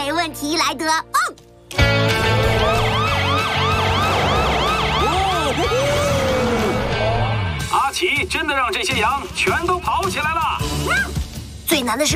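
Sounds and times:
speech: 0.2 - 2.1, 8.0 - 12.1
police car siren wailing: 2.3 - 7.3.

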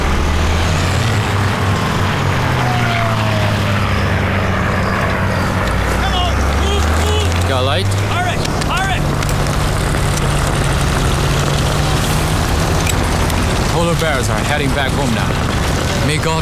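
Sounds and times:
propeller transport plane engines droning: 0.0 - 16.4
people shouting: 5.8 - 9.1
speech: 14.2 - 15.4, 16.1 - 16.4.

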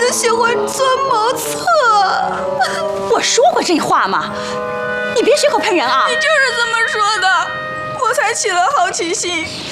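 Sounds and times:
woman sobbing and wailing in grief: 0.2 - 9.5.

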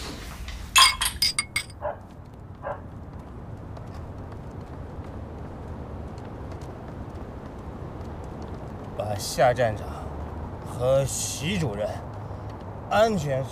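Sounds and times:
glasses clinking in a toast: 0.8 - 1.8
speech: 9.1 - 10.0, 10.8 - 12.1, 12.9 - 13.5.

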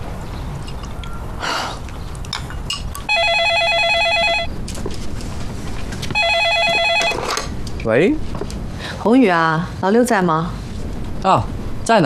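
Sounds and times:
telephone ringing in trilling electronic bursts: 3.1 - 4.5, 6.2 - 7.5
speech: 7.9 - 10.6, 11.2 - 12.0.

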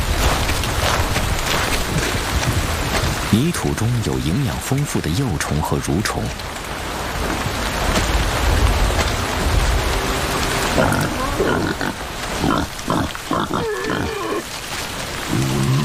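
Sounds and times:
heavy rainfall hissing: 0.0 - 15.8
speech: 3.3 - 6.6, 10.8 - 12.8
wild boars grunting and squealing while squabbling over food: 10.7 - 14.6, 15.2 - 15.8.

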